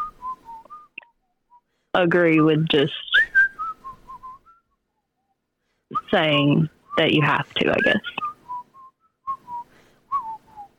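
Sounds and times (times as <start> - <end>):
person whistling a soft short tune: 0.0 - 1.7, 3.1 - 5.3, 7.8 - 10.7
speech: 2.0 - 3.1, 6.1 - 8.2.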